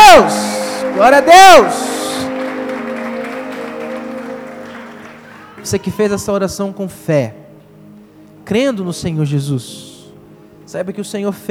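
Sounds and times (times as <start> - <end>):
audience applauding: 0.0 - 6.4
held musical tones: 0.0 - 11.4
speech: 1.0 - 1.8, 5.6 - 7.4, 8.5 - 9.9, 10.7 - 11.4.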